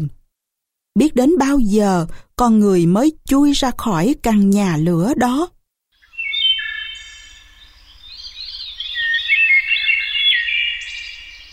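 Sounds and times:
speech: 1.0s - 5.6s
flock of birds singing in trees: 6.0s - 11.5s.

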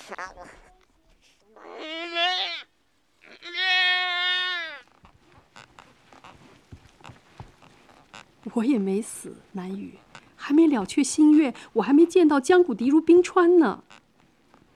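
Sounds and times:
speech: 0.1s - 0.8s, 8.5s - 14.0s
newborn lamb bleating in the Yangtze headwaters region: 1.6s - 5.0s.

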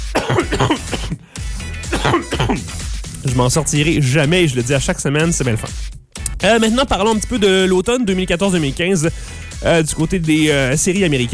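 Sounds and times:
harsh coughing into a microphone: 0.0s - 2.8s
throat-clearing: 0.0s - 2.8s
speech: 0.5s - 1.4s, 3.4s - 11.3s.

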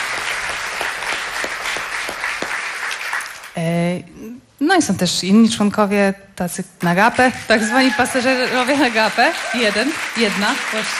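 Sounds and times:
audience applause at a live concert: 0.0s - 3.6s, 7.6s - 10.9s
speech: 3.6s - 4.1s, 4.7s - 10.9s.

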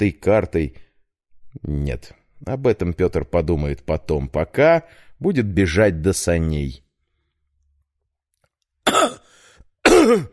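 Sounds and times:
speech: 0.0s - 0.8s, 1.6s - 6.8s, 8.8s - 9.2s, 10.0s - 10.3s
man coughing: 8.9s - 10.3s.

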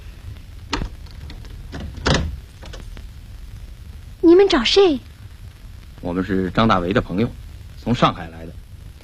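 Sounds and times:
house door creaking open: 0.7s - 2.9s
speech: 4.4s - 5.1s, 6.1s - 8.6s.

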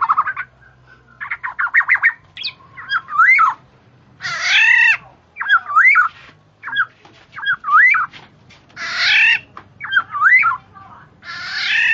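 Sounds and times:
female black-naped oriole chattering: 0.0s - 8.2s, 8.8s - 11.9s.

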